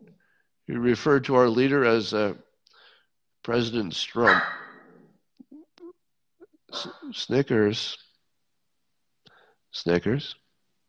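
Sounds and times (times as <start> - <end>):
speech: 0.7 - 2.4, 3.4 - 4.6, 6.7 - 8.0, 9.7 - 10.4
dog barking: 4.2 - 4.8, 6.8 - 7.0.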